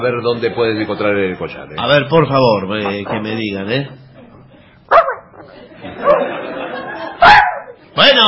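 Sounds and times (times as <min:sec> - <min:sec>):
speech: 0:00.0 - 0:04.0, 0:08.0 - 0:08.2
dog barking on a boat: 0:04.9 - 0:05.4, 0:07.2 - 0:07.8
laughter: 0:05.2 - 0:07.8.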